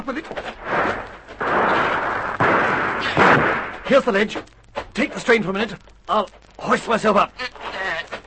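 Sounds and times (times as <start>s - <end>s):
speech: 0.0s - 0.6s, 3.9s - 7.6s
sustained rumbling noise: 0.3s - 6.6s
gunshots fired from trees below: 0.6s - 4.1s.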